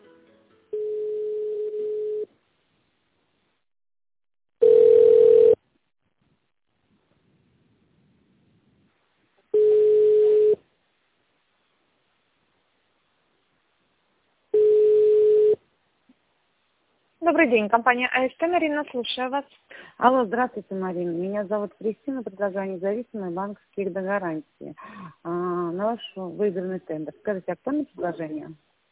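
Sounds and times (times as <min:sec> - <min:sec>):
telephone ringback tone while calling a company: 0:00.8 - 0:02.3, 0:04.6 - 0:05.6, 0:09.6 - 0:10.6, 0:14.6 - 0:15.6
speech: 0:17.3 - 0:28.7.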